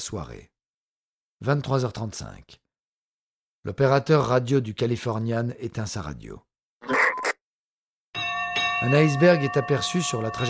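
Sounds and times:
speech: 0.0 - 0.6, 1.4 - 2.6, 3.6 - 7.0, 8.8 - 10.4
ship's warning bell clanging: 8.2 - 10.4.

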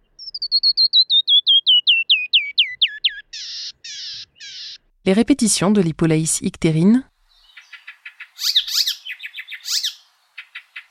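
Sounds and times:
canyon wren song: 0.0 - 4.9, 7.2 - 10.8
speech: 5.0 - 7.1.

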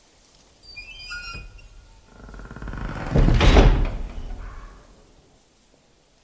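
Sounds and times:
wooden cabin door hinge creaking with high squeak: 0.6 - 4.9.

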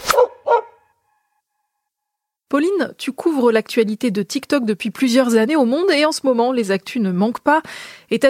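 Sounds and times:
dogs barking with high yips and deeper barks: 0.1 - 0.8
speech: 2.5 - 8.2.

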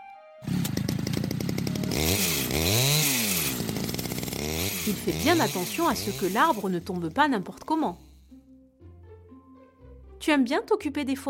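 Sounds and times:
lumberjack's chainsaw revving: 0.4 - 8.2
speech: 4.9 - 8.1, 10.3 - 11.2.

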